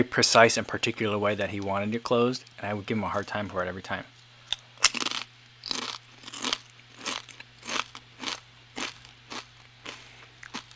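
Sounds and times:
speech: 0:00.0 - 0:04.1
crisp chips being chewed: 0:04.8 - 0:10.7.

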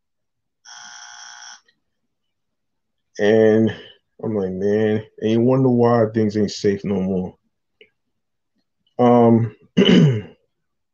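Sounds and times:
loud flat electronic buzzer: 0:00.6 - 0:01.7
speech: 0:03.2 - 0:07.4, 0:09.0 - 0:10.2.

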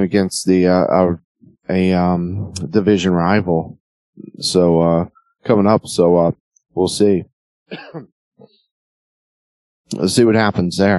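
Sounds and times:
speech: 0:00.0 - 0:08.5, 0:09.9 - 0:10.9
person clearing throat: 0:07.7 - 0:08.1.

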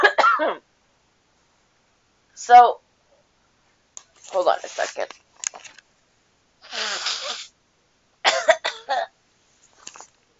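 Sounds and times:
speech: 0:00.4 - 0:00.7, 0:02.4 - 0:02.8, 0:04.3 - 0:05.8
faint sniff: 0:06.6 - 0:07.6
person blowing nose: 0:06.6 - 0:07.6.

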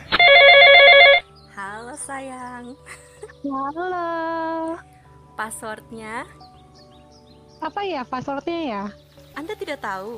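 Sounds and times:
telephone ringing on an outgoing call: 0:00.1 - 0:01.2
speech: 0:03.4 - 0:06.4, 0:07.6 - 0:10.1.

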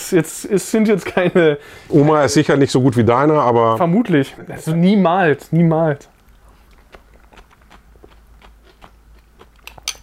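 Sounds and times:
speech: 0:00.1 - 0:06.1
person biting and chewing pickled gherkins: 0:06.1 - 0:10.0.

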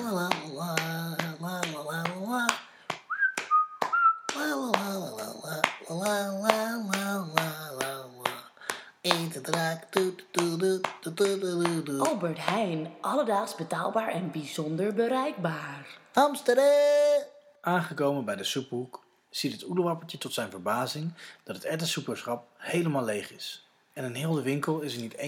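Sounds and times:
person singing or humming a tune: 0:00.0 - 0:02.7, 0:04.2 - 0:12.6
rhythmic finger snaps: 0:00.3 - 0:05.0, 0:05.6 - 0:11.8
person whistling a tune while strolling: 0:03.1 - 0:04.4
speech: 0:11.2 - 0:25.2.

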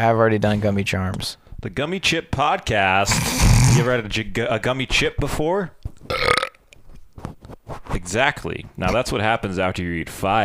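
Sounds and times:
speech: 0:00.0 - 0:06.3, 0:07.9 - 0:10.4
softer shorter belch: 0:03.0 - 0:03.9, 0:06.1 - 0:06.6
loud burp: 0:03.0 - 0:04.0, 0:06.1 - 0:06.6.

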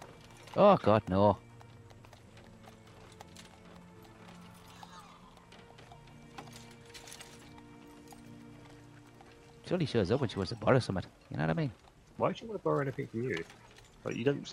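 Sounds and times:
horse-drawn carriage hooves clip-clopping: 0:00.0 - 0:14.5
speech: 0:00.6 - 0:01.4, 0:09.7 - 0:14.5
faint horse whinny: 0:04.4 - 0:05.5.

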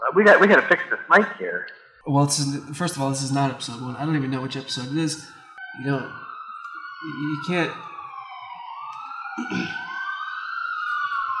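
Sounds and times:
emergency vehicle siren wailing outside: 0:00.0 - 0:11.3
speech: 0:00.1 - 0:06.3, 0:07.0 - 0:07.9, 0:09.4 - 0:09.8.

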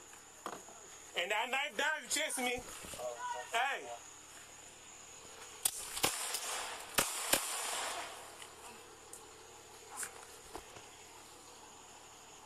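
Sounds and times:
hiss: 0:00.0 - 0:12.4
speech: 0:01.2 - 0:04.1
gunshot cracks during a police confrontation: 0:05.6 - 0:08.3.

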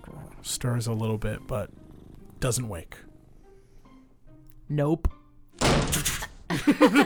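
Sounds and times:
speech: 0:00.4 - 0:01.8, 0:02.4 - 0:03.1, 0:04.7 - 0:07.0
door shutting with a thud: 0:05.6 - 0:06.2
laughter: 0:06.5 - 0:07.0.

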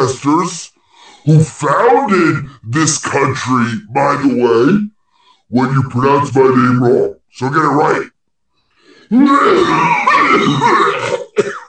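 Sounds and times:
speech: 0:00.0 - 0:04.9, 0:05.5 - 0:08.1, 0:09.1 - 0:11.6
loud rasping throat-clearing and cough: 0:09.1 - 0:11.6
short sharp cough: 0:10.1 - 0:11.6.

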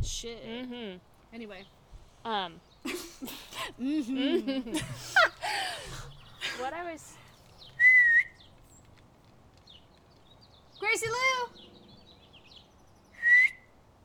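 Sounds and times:
speech: 0:00.0 - 0:07.2, 0:10.8 - 0:11.7
laughter: 0:02.8 - 0:07.2
person whistling short rising notes: 0:07.8 - 0:08.4, 0:13.2 - 0:13.7.

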